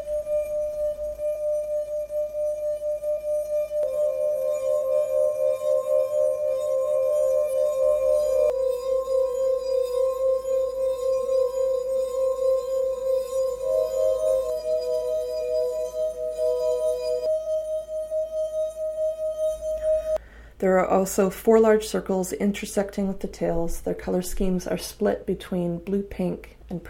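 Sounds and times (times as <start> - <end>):
rubbed wine glass rims with varying water ringing: 0.0 - 20.2
speech: 20.9 - 26.8.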